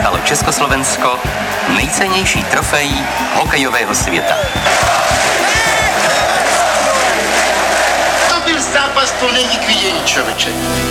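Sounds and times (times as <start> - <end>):
low thumps: 0.0 - 6.6
large indoor ice hockey arena crowd cheering and shouting in ovation: 0.0 - 10.6
speech: 0.3 - 5.6, 8.7 - 10.9.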